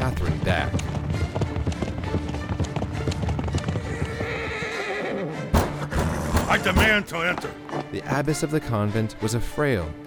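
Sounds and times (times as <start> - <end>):
horses galloping with riders on horseback: 0.0 - 8.0
speech: 6.6 - 10.0.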